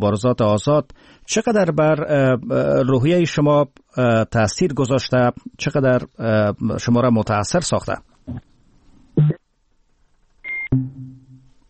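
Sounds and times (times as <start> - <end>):
speech: 0.0 - 8.5, 9.2 - 9.4
electronic beeps on a telephone line after a dropped call: 10.5 - 11.0.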